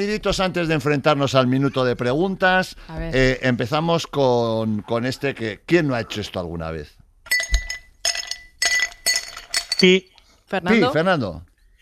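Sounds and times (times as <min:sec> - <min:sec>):
speech: 0:00.0 - 0:07.0, 0:09.8 - 0:11.5
ice cubes clinking into a glass: 0:07.3 - 0:10.0.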